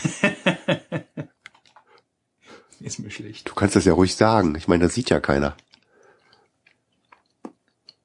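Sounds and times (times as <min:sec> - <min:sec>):
laughter: 0:00.0 - 0:01.3
moist chewing with smacking mouth sounds: 0:01.4 - 0:02.1, 0:05.2 - 0:08.0
speech: 0:03.0 - 0:05.7
crunchy bites: 0:05.5 - 0:08.0.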